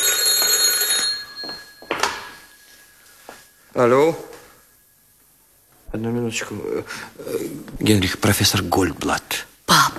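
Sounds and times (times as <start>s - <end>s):
telephone bell ringing in a rapid trill: 0.0s - 3.6s
speech: 3.8s - 4.3s, 6.0s - 9.5s.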